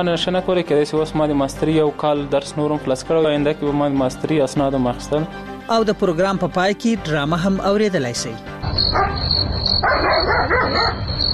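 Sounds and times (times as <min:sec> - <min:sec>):
speech: 0:00.0 - 0:11.3
high-pitched insect-like chirring: 0:08.7 - 0:09.9, 0:10.9 - 0:11.3
dog barking: 0:08.9 - 0:11.2.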